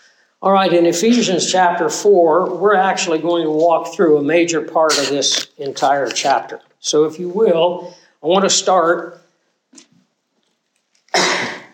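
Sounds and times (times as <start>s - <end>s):
speech: 0.4s - 9.8s
small throaty sound: 4.8s - 6.5s
harsh cough into a microphone: 4.9s - 5.4s, 11.1s - 11.7s.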